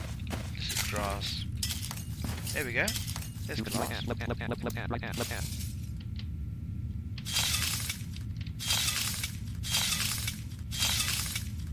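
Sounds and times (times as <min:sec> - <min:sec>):
low constant hum: 0:00.0 - 0:11.7
speech: 0:00.9 - 0:01.5, 0:02.5 - 0:05.6
broken glass shards clinking and crunching as they are picked up: 0:01.6 - 0:04.0, 0:07.3 - 0:11.6.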